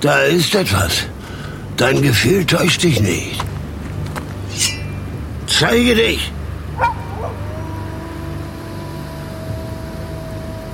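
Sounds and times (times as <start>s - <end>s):
speech: 0.0s - 3.5s, 5.6s - 7.0s
low rumbling growl-like during a storm: 3.5s - 10.7s
wolf sharp vocal bursts: 6.8s - 8.4s
wolf whimpering: 6.8s - 9.3s.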